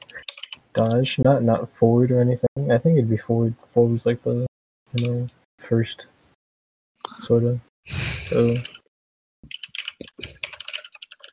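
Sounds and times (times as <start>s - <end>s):
rapid typing on a computer keyboard: 0.0s - 1.1s, 8.4s - 8.8s, 9.4s - 11.3s
speech: 0.8s - 6.1s, 7.2s - 8.8s.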